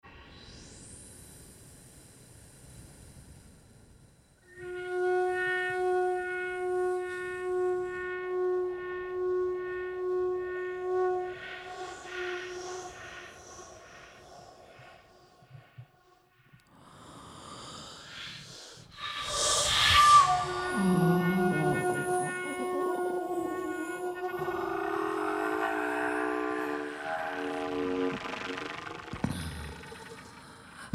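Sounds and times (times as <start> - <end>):
vocal flute: 4.5 - 14.2, 19.0 - 30.8.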